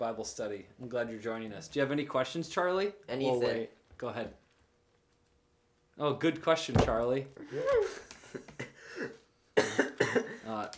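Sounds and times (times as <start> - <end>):
speech: 0.0 - 4.4, 6.0 - 10.7
harsh wet coughing fit after inhaling water: 8.9 - 10.5.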